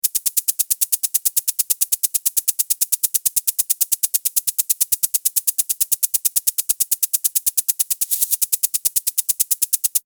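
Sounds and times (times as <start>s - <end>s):
sprinkler: 0.0s - 10.0s.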